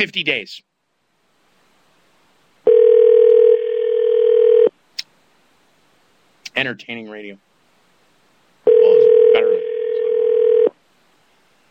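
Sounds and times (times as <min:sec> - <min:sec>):
speech: 0:00.0 - 0:00.7, 0:06.6 - 0:07.5
telephone ringing over the line: 0:02.7 - 0:04.7, 0:08.7 - 0:10.7.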